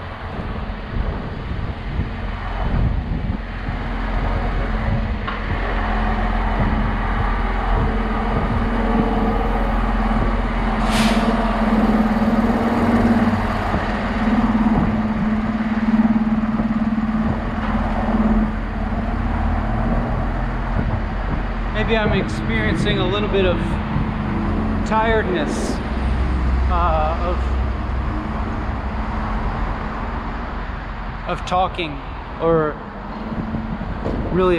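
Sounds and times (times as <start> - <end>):
heavy truck engine rumbling and idling: 0.0 - 34.5
steady street traffic: 0.0 - 34.5
truck air brakes hissing: 10.7 - 11.7
speech: 21.9 - 23.8, 24.9 - 25.8, 31.3 - 32.8, 34.4 - 34.5.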